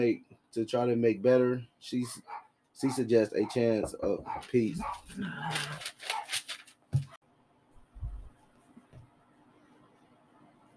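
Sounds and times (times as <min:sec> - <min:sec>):
speech: 0:00.0 - 0:06.3
dog barking excitedly: 0:02.0 - 0:03.6, 0:04.2 - 0:06.5
quiet rustling: 0:04.3 - 0:07.2
thumps: 0:07.9 - 0:09.1.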